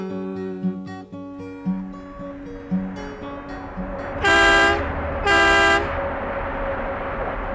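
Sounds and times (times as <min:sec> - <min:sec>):
long-haul Mack truck 450-horsepower diesel engine rumbling: 0:01.7 - 0:07.5
Mack truck air horn blasts: 0:03.7 - 0:06.1.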